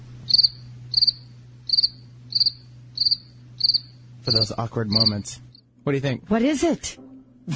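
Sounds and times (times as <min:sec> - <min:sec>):
faint steady low hum: 0:00.0 - 0:07.5
cricket chirping sound effect: 0:00.3 - 0:05.7
speech: 0:00.4 - 0:01.9, 0:04.2 - 0:07.5.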